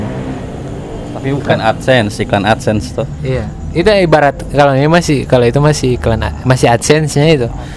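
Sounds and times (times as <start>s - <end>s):
loud motorbike engines passing on the road: 0.0s - 6.2s
speech: 1.2s - 7.7s.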